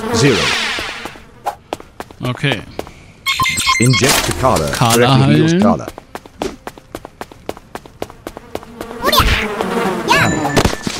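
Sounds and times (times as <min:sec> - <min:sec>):
speech: 0:00.0 - 0:00.6, 0:02.2 - 0:02.8, 0:03.8 - 0:06.0
bee buzzing in a video game: 0:00.0 - 0:02.0, 0:04.2 - 0:10.9.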